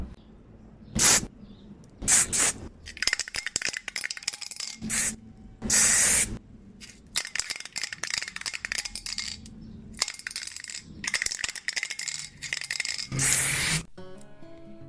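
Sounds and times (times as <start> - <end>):
spray paint can hissing as a street artist works in Porto: 1.0 - 1.3, 2.0 - 9.4, 10.0 - 13.9.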